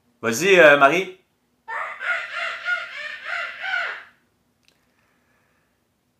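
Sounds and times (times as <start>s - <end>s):
speech: 0.2s - 1.2s
woman imitating the call of a small marmoset: 1.7s - 4.2s.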